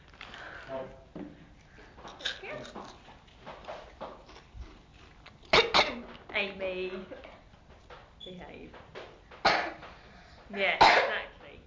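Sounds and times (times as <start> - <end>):
breathy noises: 0.1 - 2.6
speech: 0.7 - 1.4, 2.0 - 3.0, 6.4 - 7.3, 10.5 - 11.4
harsh cough: 5.5 - 6.0, 9.4 - 9.9, 10.8 - 11.2.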